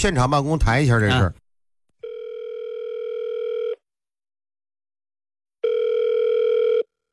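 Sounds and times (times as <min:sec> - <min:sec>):
speech: 0:00.0 - 0:01.4
telephone line tone while a call connects: 0:02.0 - 0:03.8, 0:05.6 - 0:06.9.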